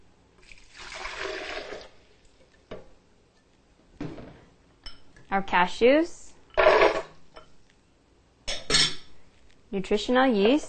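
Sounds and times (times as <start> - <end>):
water pouring into a high-speed blender: 0.4 - 2.4
speech: 5.3 - 6.2, 9.7 - 10.6.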